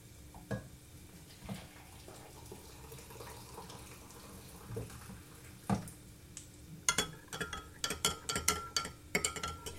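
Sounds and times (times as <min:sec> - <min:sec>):
boiling water poured to make beef stock: 0:01.6 - 0:05.6
clinks and taps of stirring: 0:06.9 - 0:09.7.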